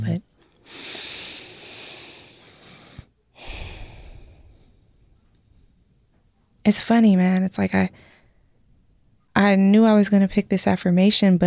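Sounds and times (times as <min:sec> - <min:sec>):
one deep human breath: 0:00.6 - 0:05.2
speech: 0:06.7 - 0:08.1, 0:09.4 - 0:11.4.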